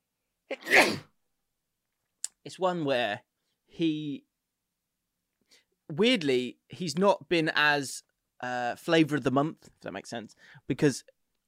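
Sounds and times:
person sneezing: 0:00.5 - 0:01.1
speech: 0:02.5 - 0:04.3, 0:05.9 - 0:11.2.

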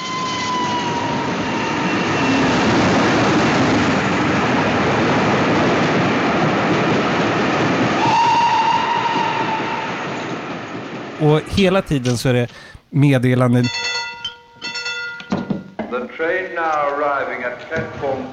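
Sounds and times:
train roaring past with wheels and wind rush: 0:00.0 - 0:12.0
speech: 0:11.3 - 0:13.9, 0:16.2 - 0:18.3.

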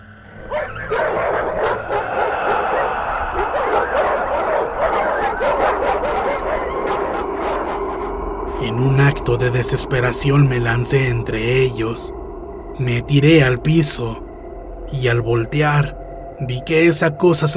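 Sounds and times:
several dogs barking and yipping: 0:00.3 - 0:08.1
speech: 0:08.8 - 0:12.2, 0:12.8 - 0:14.3, 0:14.9 - 0:17.5.

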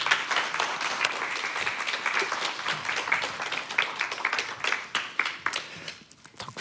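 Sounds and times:
crowd applauding: 0:00.0 - 0:06.0.

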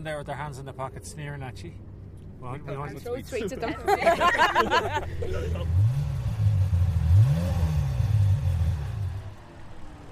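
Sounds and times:
speech: 0:00.0 - 0:06.0
laughter: 0:02.7 - 0:05.8
Ferrari 355 sports car engine revving: 0:05.3 - 0:09.4.

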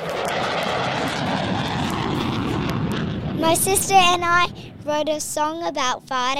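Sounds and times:
fighter jet engine roaring on takeoff: 0:00.0 - 0:06.3
speech: 0:03.4 - 0:06.3.

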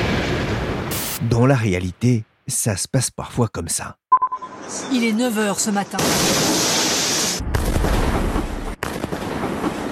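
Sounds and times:
rumbling explosions from a meteor disintegrating overhead: 0:00.0 - 0:01.2, 0:06.0 - 0:09.9
speech: 0:01.3 - 0:06.8
brief hiss of a meteor breaking up: 0:06.2 - 0:07.4.

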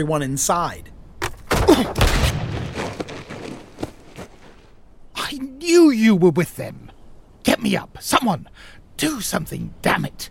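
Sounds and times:
speech: 0:00.0 - 0:00.9, 0:05.7 - 0:06.8, 0:07.6 - 0:10.2
loud gunshot: 0:01.6 - 0:03.1.

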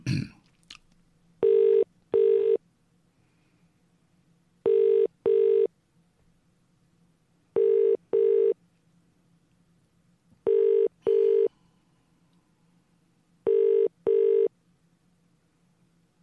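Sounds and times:
faint low hum: 0:00.0 - 0:16.2
telephone ringback tone with double ring: 0:01.4 - 0:02.6, 0:04.7 - 0:05.7, 0:07.6 - 0:08.6, 0:10.5 - 0:11.5, 0:13.5 - 0:14.5.

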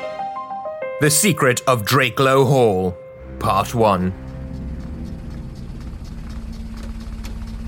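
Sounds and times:
speech: 0:01.0 - 0:04.3
vintage motor car engine rumbling while driving: 0:03.3 - 0:07.6.

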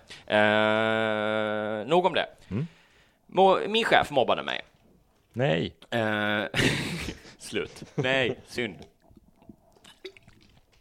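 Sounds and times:
speech: 0:00.3 - 0:01.2, 0:01.8 - 0:04.7, 0:05.3 - 0:08.9
small gulp: 0:08.5 - 0:10.7
person sipping a gin and tonic: 0:08.8 - 0:10.7
soft wet slurps: 0:08.8 - 0:10.7.

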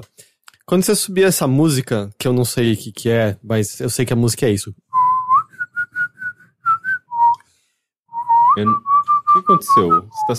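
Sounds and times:
speech: 0:00.0 - 0:05.0, 0:08.6 - 0:10.3
person whistling a song melody: 0:05.0 - 0:07.4, 0:08.1 - 0:10.3.

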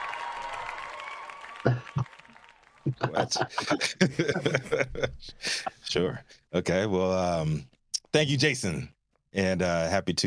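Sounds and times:
crowd cheering and applause: 0:00.0 - 0:04.5
speech: 0:01.6 - 0:01.9, 0:03.0 - 0:10.2
laughter: 0:01.6 - 0:02.2, 0:02.8 - 0:06.2.

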